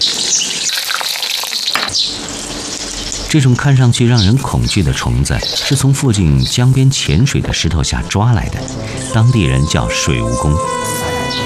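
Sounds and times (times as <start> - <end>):
bamboo worms frying in a pot of hot oil: 0.0 - 5.7
speech: 3.3 - 11.1.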